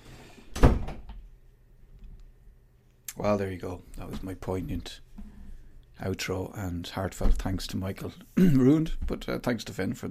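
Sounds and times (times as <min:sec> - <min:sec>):
door thudding shut: 0:00.6 - 0:01.1
speech: 0:03.2 - 0:05.3, 0:06.0 - 0:10.0.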